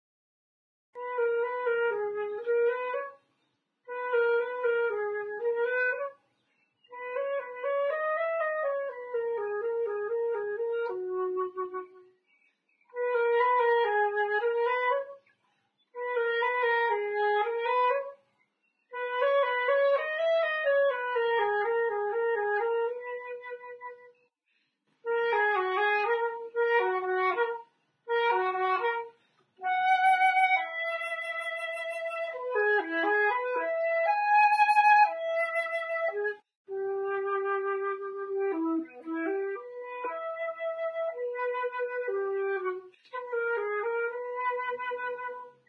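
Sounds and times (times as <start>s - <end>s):
flute melody: 1.0s - 3.2s, 3.9s - 6.2s, 6.9s - 12.2s, 12.9s - 15.2s, 16.0s - 18.2s, 18.9s - 24.2s, 25.1s - 45.6s.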